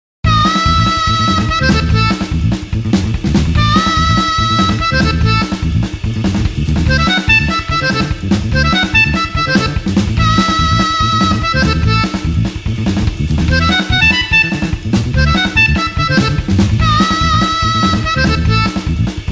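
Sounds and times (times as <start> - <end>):
blues harmonica playing an eight-beat rhythm: 0.3 - 19.2.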